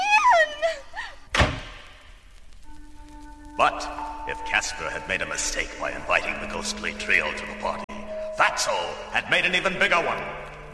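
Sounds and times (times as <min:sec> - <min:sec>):
heavy door being shut to lock it: 0:01.3 - 0:01.8
speech: 0:03.6 - 0:07.8, 0:08.4 - 0:10.7.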